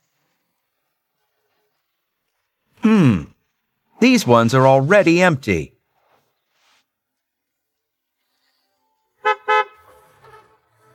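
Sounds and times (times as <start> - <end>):
speech: 2.8 - 3.3, 4.0 - 5.7
garbage truck horn honks: 9.2 - 10.6.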